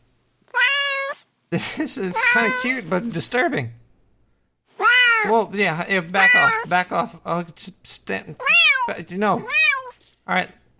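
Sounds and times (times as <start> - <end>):
cat meowing: 0.5 - 1.2, 2.1 - 2.9, 4.8 - 5.4, 6.2 - 6.7, 8.4 - 10.0
speech: 1.5 - 3.8, 5.3 - 9.6, 10.3 - 10.6.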